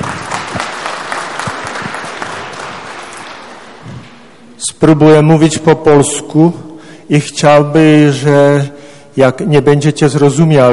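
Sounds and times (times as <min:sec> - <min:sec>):
audience applause welcoming a guest: 0:00.0 - 0:04.0
speech: 0:04.7 - 0:10.7.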